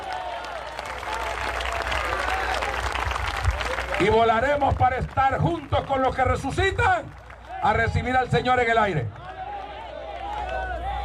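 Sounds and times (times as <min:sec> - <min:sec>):
congregation applauding: 0:00.0 - 0:11.0
speech: 0:04.0 - 0:09.2.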